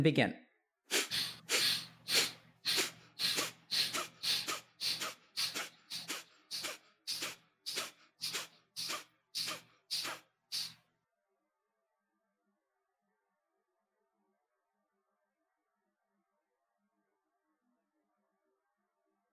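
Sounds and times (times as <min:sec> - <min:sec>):
forceful breaths in a deep breathing exercise with eyes closed: 0:00.9 - 0:10.8.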